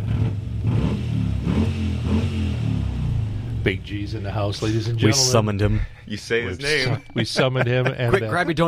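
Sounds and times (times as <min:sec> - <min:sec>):
Harley-Davidson motorcycle engine revving: 0:00.0 - 0:05.4
speech: 0:03.6 - 0:08.6
laughter: 0:04.7 - 0:08.6.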